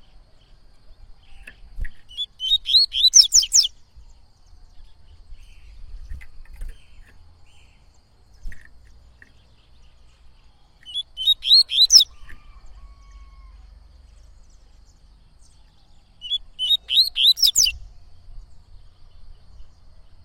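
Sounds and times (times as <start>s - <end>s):
Coleiro-baiano whistling song: 2.1s - 3.7s, 10.8s - 12.1s, 16.2s - 17.8s.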